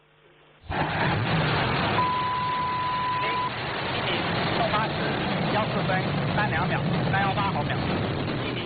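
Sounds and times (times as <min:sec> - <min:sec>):
Long March 7 carrier rocket ignition and liftoff roar: 0:00.6 - 0:08.6
voices: 0:02.5 - 0:08.6.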